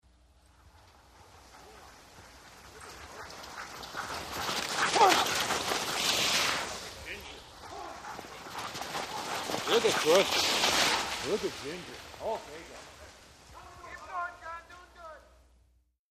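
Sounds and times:
dog sled with an 8 dog team moving: 0.1s - 15.6s.

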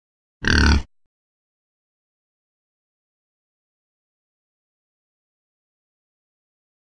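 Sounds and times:
boar snorting and snarling: 0.4s - 0.9s.

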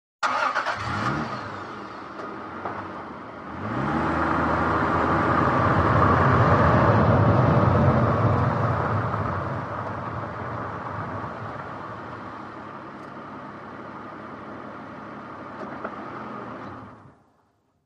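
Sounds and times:
SUV engine accelerating: 0.2s - 17.3s.

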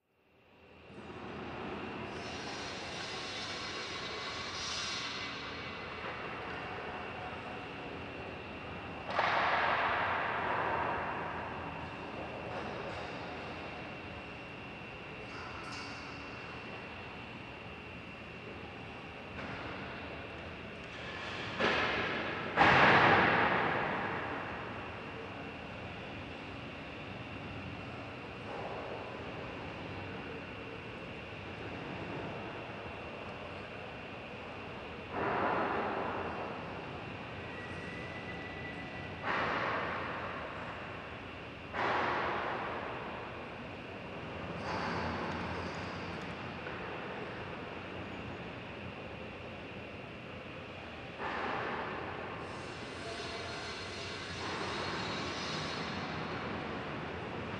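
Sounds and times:
internal industrial factory noise: 0.6s - 57.5s.

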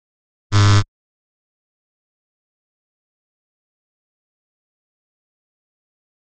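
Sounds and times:
grimy buzzing noise drone: 0.5s - 0.8s.

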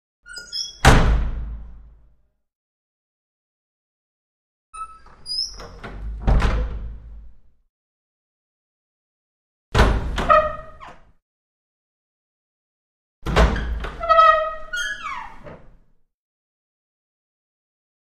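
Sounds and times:
small wooden door opening: 0.3s - 1.3s, 4.8s - 7.3s, 9.8s - 11.1s, 13.2s - 15.7s.

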